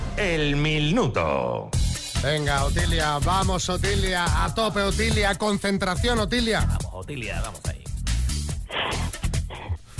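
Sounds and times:
speech: 0.2 - 7.8
heavy deep rasping breathing into a phone microphone: 8.6 - 9.9.

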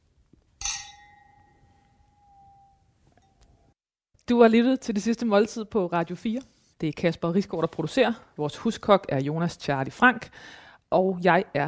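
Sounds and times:
glasses of port wine clinking in a toast: 0.6 - 3.4
speech: 4.3 - 11.6.

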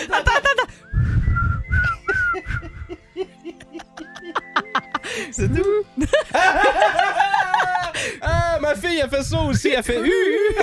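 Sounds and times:
laughter and giggling: 0.0 - 0.8, 1.8 - 8.2, 10.0 - 10.6
person whistling a rock song melody: 0.6 - 3.2, 4.0 - 5.3
speech: 9.0 - 10.6.

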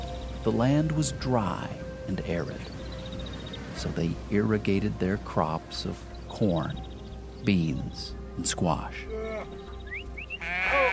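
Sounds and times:
speech: 0.4 - 2.8, 3.8 - 9.2
sheep bleating: 9.1 - 9.6, 10.3 - 10.9.

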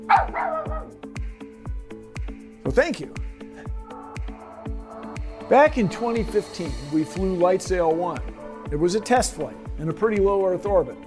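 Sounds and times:
dog barking: 0.0 - 1.0
speech: 2.7 - 3.3, 5.5 - 11.0.

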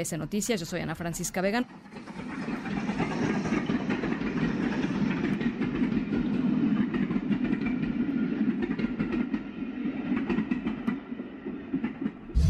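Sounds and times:
speech: 0.0 - 2.3
train wheels clattering on rails: 1.5 - 12.3.

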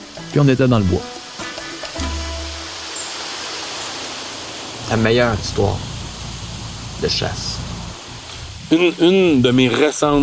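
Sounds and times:
rushing river water: 0.0 - 10.2
speech: 0.3 - 1.2, 4.9 - 5.9, 7.0 - 7.7, 8.7 - 10.2
wind blowing outdoors beside a river: 2.6 - 10.2
low wind gust buffeting the microphone: 4.1 - 10.2.

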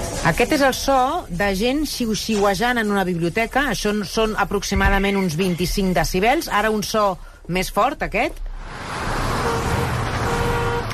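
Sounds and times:
speech: 0.2 - 8.8
road traffic noise of passing cars: 8.3 - 10.9.

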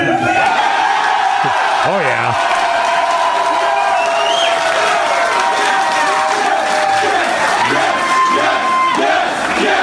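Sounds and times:
large arena wrestling crowd cheering and whooping: 0.2 - 9.6.

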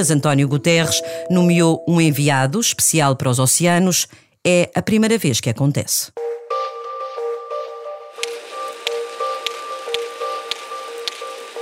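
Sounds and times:
speech: 0.0 - 6.3
sperm whale clicks underwater: 8.2 - 11.5.

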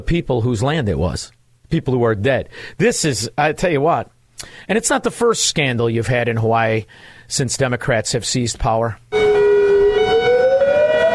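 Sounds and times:
speech: 0.0 - 9.4
nuclear attack warning siren in Hawaii wailing: 9.1 - 11.1.

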